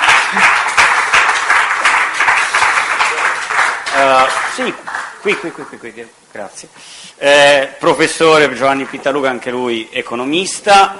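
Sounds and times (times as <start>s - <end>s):
crowd applause: 0.0s - 5.8s
speech: 4.0s - 10.9s.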